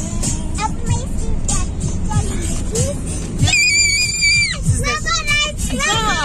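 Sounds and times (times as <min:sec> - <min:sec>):
low car engine rumble: 0:00.0 - 0:06.2
child screaming in a car: 0:03.4 - 0:04.6.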